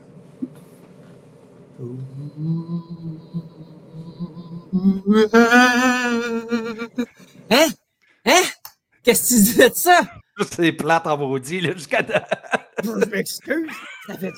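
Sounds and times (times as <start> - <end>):
speech: 1.8 - 7.0, 9.1 - 14.3
person imitating a ghost with wavering moans: 1.8 - 7.7
laughter: 5.1 - 7.1, 11.7 - 14.3.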